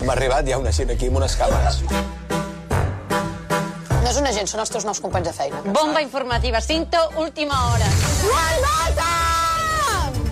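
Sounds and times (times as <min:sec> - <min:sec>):
speech: 0:00.0 - 0:02.5, 0:04.1 - 0:09.2
woman shouting: 0:08.2 - 0:10.2.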